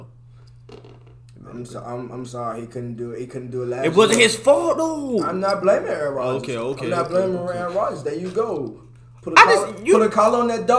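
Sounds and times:
low steady hum: 0.0s - 10.7s
speech: 1.5s - 10.7s
person imitating dog barking: 9.4s - 9.8s.

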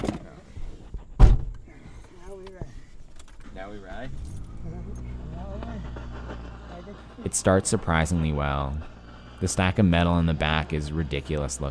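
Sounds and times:
heavy truck door thudding shut: 1.2s - 1.6s
speech: 3.7s - 4.4s, 7.0s - 11.6s
brief rising whine: 3.7s - 9.5s.

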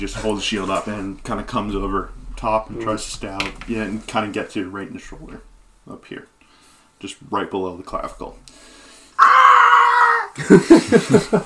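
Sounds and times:
speech: 0.0s - 6.3s, 7.0s - 9.3s, 10.4s - 11.4s
person screaming: 9.2s - 10.4s
laughter: 10.4s - 11.4s.

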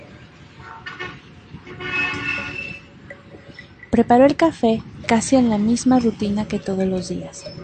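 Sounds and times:
busy urban traffic noise: 0.0s - 7.6s
car horn honking in the street: 0.8s - 2.9s
speech: 3.9s - 7.6s.

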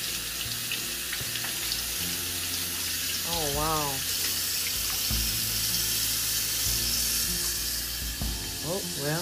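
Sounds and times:
water running from a tap: 0.0s - 9.1s
speech: 3.4s - 4.1s, 8.7s - 9.1s.

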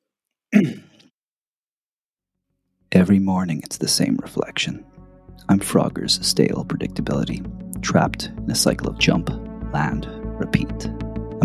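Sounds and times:
throat clearing: 0.6s - 1.2s
speech: 3.0s - 11.4s.

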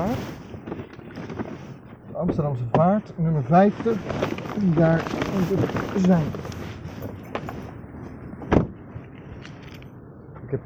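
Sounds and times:
speech: 2.2s - 6.6s
keys jingling: 3.8s - 8.2s, 9.4s - 10.0s.

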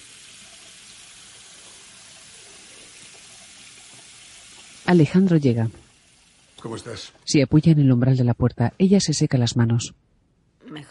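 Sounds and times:
water running from a bathroom tap over a pair of hands: 0.0s - 7.0s
speech: 4.9s - 5.8s, 6.6s - 10.0s.

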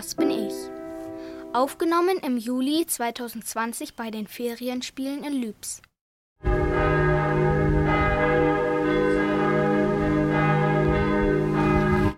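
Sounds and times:
church bells ringing: 0.0s - 1.8s, 6.4s - 12.1s
speech: 1.5s - 5.9s.

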